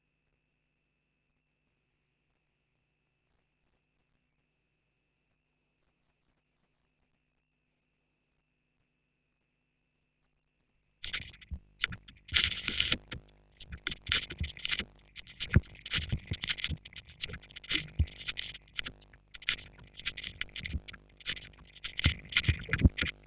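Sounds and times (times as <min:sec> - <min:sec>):
vinyl record noise: 0:11.0 - 0:23.2
vocoder in pseudo stereo: 0:11.0 - 0:23.2.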